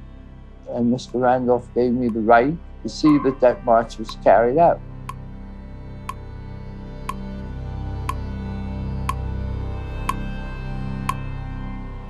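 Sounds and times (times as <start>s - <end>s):
low murmuring drone: 0.0s - 9.9s
speech: 0.7s - 4.9s
clock ticking: 3.0s - 4.2s.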